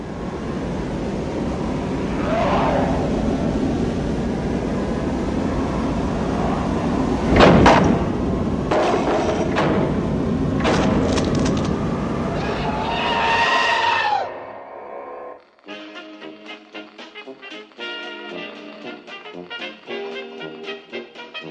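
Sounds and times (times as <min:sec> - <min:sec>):
constant rushing rumbling noise: 0:00.0 - 0:20.0
cabin front doors banging violently open: 0:07.3 - 0:13.3.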